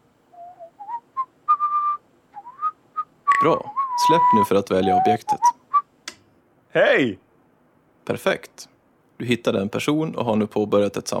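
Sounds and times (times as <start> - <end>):
person whistling a short bright melody: 0.4 - 5.8
speech: 3.4 - 5.6, 6.8 - 7.2, 8.0 - 11.1.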